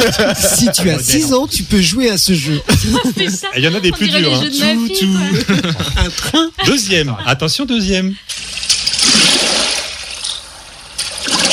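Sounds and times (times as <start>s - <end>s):
laughter: 0.0s - 8.3s
speech: 0.0s - 8.6s
oars of a rowing boat splashing in water: 11.0s - 11.5s.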